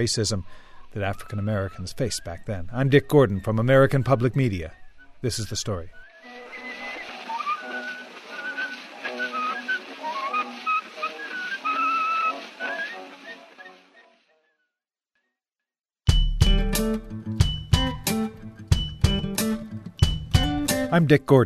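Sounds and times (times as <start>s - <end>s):
speech: 0.0s - 6.0s, 20.9s - 21.4s
thin tinny old phonograph recording of a whistled song: 0.8s - 14.4s
louder music with sharp percussive hits: 16.1s - 20.9s.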